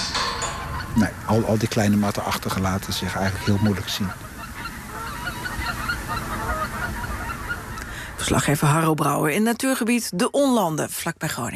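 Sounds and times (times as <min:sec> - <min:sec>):
geese honking in a nature reserve near Groningen: 0:00.0 - 0:08.8
speech: 0:01.0 - 0:04.3, 0:08.3 - 0:11.5.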